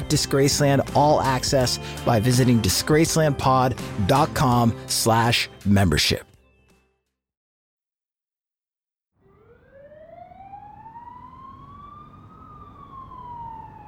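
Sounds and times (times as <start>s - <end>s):
speech: 0.1s - 6.3s
loud emergency vehicle siren: 9.2s - 13.8s
low rumble of traffic or engine noise: 9.3s - 13.8s.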